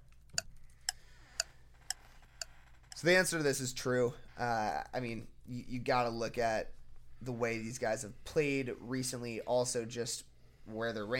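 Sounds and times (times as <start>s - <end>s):
clock ticking: 0.3s - 3.1s
speech: 3.0s - 11.1s.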